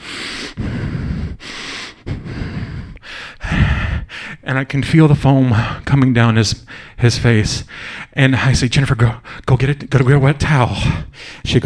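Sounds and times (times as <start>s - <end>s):
person imitating a man breathing hard through his nose: 0.0s - 4.5s, 5.5s - 5.8s, 6.6s - 7.0s, 7.6s - 8.2s, 10.8s - 11.5s
speech: 4.5s - 11.6s.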